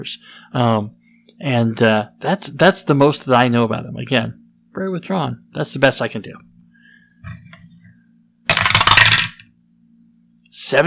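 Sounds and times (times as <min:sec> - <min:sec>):
speech: 0:00.0 - 0:06.5, 0:10.6 - 0:10.8
dice rattling in a dice tower: 0:08.5 - 0:09.4.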